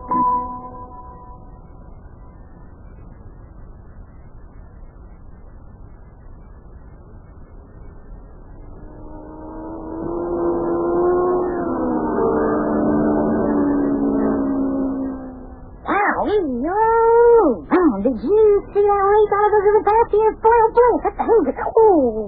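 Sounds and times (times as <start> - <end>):
high-pitched racing car engine whine: 0.0 - 22.2
racing car engine roaring on racetrack: 8.5 - 20.5.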